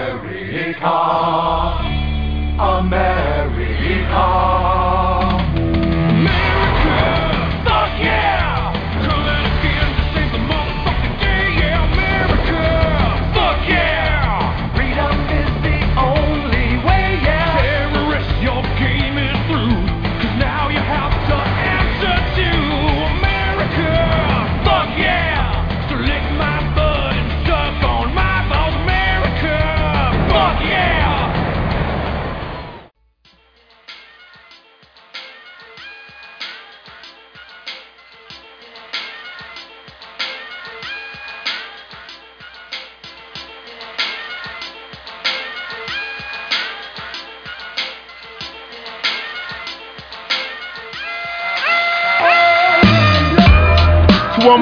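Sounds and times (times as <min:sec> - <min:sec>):
music playing during a break: 0:00.0 - 0:32.0, 0:33.2 - 0:54.5
speech: 0:00.6 - 0:01.9.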